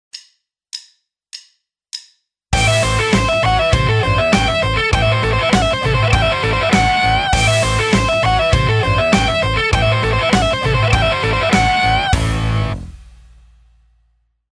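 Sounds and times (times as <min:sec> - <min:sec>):
sweep picking rock guitar lick: 0:02.6 - 0:13.1.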